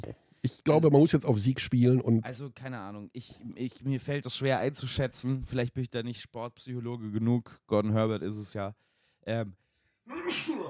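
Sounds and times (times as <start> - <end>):
speech: 0.0 - 9.6
person sneezing in a cold hotel room: 10.1 - 10.6.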